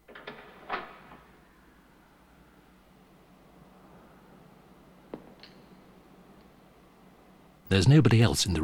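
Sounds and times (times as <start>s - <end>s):
door opening with rattle and thud: 0.0s - 1.4s
speech: 7.7s - 8.6s.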